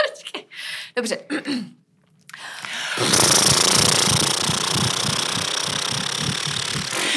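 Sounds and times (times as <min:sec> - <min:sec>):
speech: 0:01.0 - 0:01.8
lip trill with relaxed lips buzzing and voice: 0:03.0 - 0:07.1.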